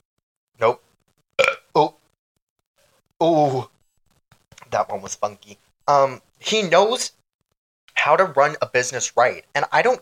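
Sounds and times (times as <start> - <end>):
speech: 0.6 - 0.8, 3.2 - 3.7, 4.7 - 7.2, 8.0 - 10.0
person burping: 1.4 - 1.9.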